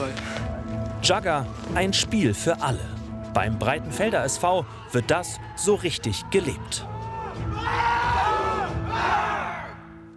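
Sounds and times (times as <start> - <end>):
speech: 0.0 - 0.3, 1.0 - 7.0
group of Jugger players shouting together: 6.8 - 9.8.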